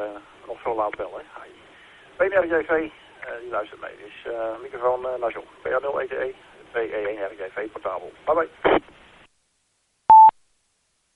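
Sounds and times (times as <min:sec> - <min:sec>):
speech: 0:00.0 - 0:09.0
ham radio repeater beep: 0:10.1 - 0:10.3.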